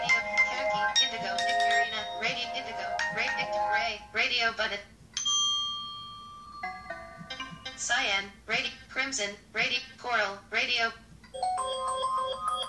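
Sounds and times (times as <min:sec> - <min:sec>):
phone ringtones previewed on a settings screen: 0:00.0 - 0:03.4, 0:05.2 - 0:07.3, 0:11.4 - 0:12.6
speech-like passages: 0:00.1 - 0:04.9, 0:07.4 - 0:11.0.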